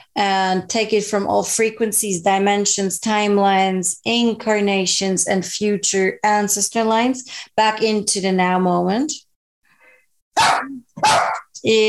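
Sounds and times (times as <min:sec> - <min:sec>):
speech: 0:00.2 - 0:09.2, 0:10.4 - 0:11.8
dog barking: 0:10.4 - 0:11.5.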